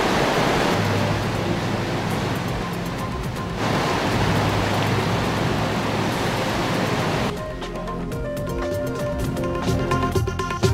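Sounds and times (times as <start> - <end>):
heavy rain in city streets: 0.0 - 7.4
rushing floodwater in city streets: 0.0 - 7.4
low rumbling undertone: 0.0 - 10.6.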